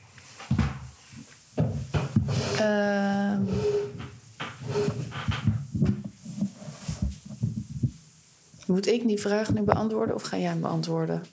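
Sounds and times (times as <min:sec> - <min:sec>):
wooden table creaking and knocking as it shifts under weight: 0:01.6 - 0:08.0
speech: 0:02.6 - 0:03.1, 0:08.7 - 0:11.3.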